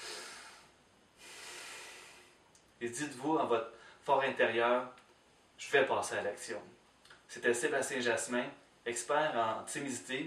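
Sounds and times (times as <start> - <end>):
deep breath drawn in and let out: 0.0 - 2.5, 3.7 - 4.0
speech: 2.8 - 5.0, 5.6 - 10.2.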